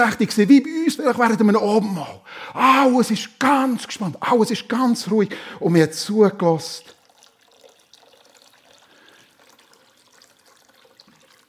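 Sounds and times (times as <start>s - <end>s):
speech: 0.0s - 7.0s
water being poured out: 6.6s - 11.4s.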